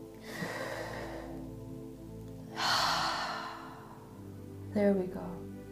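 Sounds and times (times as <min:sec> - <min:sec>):
slow deep breathing during a guided relaxation exercise: 0:00.2 - 0:01.6, 0:02.5 - 0:04.4
speech: 0:04.8 - 0:05.4.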